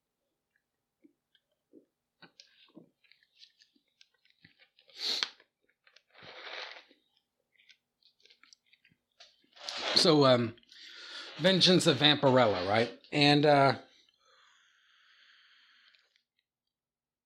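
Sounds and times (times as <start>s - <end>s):
person sipping a Coke: 1.8s - 8.9s, 15.5s - 16.4s
speech: 10.0s - 10.6s, 11.4s - 13.9s.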